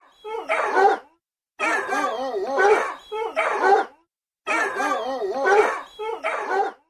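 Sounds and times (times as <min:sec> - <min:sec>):
Android dogs barking ringtone: 0:00.0 - 0:06.8.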